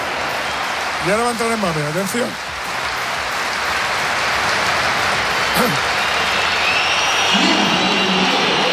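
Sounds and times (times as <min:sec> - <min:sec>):
crowd whistling in disapproval: 0:00.0 - 0:01.6, 0:04.3 - 0:08.7
huge stadium crowd roaring: 0:00.0 - 0:08.7
speech: 0:01.0 - 0:02.5.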